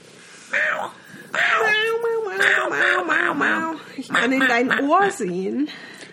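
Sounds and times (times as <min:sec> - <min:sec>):
tomcat meowing: 0:00.5 - 0:03.8
speech: 0:04.0 - 0:05.9.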